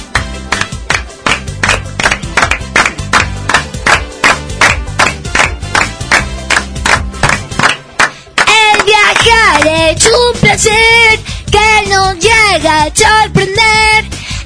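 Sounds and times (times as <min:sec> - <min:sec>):
group clapping hands in a steady rhythm: 0:00.0 - 0:10.6
backing music: 0:00.0 - 0:14.4
person singing: 0:08.4 - 0:14.4
speech: 0:09.9 - 0:14.1.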